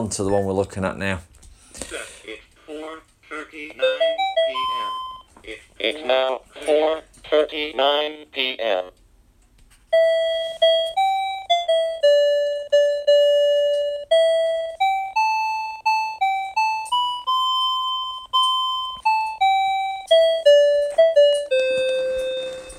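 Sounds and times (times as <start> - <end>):
speech: 0.0 - 2.4, 5.5 - 9.0, 9.9 - 11.0
cube-shaped talking alarm clock electronic chime melody: 3.8 - 5.3, 9.9 - 22.7.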